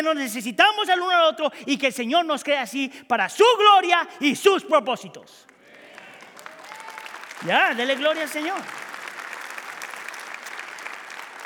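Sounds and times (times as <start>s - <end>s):
speech: 0.0s - 5.5s, 7.4s - 8.8s
audience clapping: 5.4s - 11.4s.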